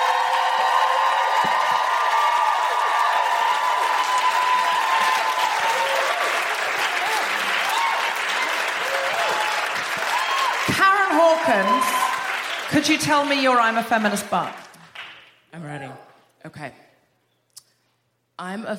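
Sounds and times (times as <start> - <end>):
live audience whooping: 0.0 - 12.6
live audience clapping for a guest being introduced: 0.0 - 15.4
speech: 12.7 - 14.6, 15.5 - 16.8, 18.4 - 18.7.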